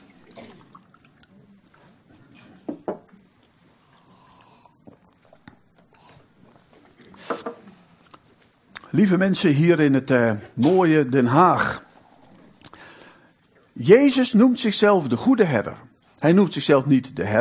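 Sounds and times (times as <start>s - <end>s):
water pouring into a glass in The Hague: 0.1s - 2.3s
speech: 8.9s - 11.8s, 13.8s - 17.3s.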